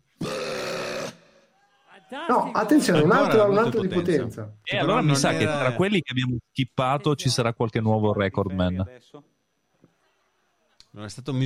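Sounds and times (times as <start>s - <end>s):
long loud burp: 0.1s - 1.4s
speech: 2.1s - 9.3s, 10.9s - 11.4s.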